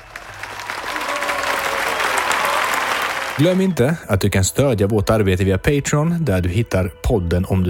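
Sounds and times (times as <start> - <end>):
applause from a group: 0.0 - 3.8
speech: 3.4 - 7.6.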